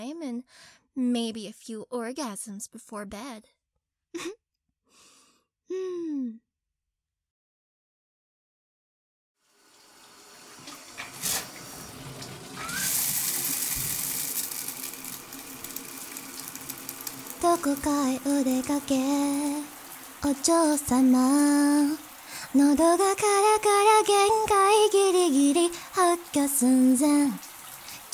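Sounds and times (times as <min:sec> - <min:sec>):
speech: 0:00.4 - 0:04.4, 0:05.7 - 0:06.5, 0:17.4 - 0:27.5
breathy vocal sounds: 0:05.0 - 0:06.4, 0:22.1 - 0:22.6
shower water running: 0:09.4 - 0:28.1.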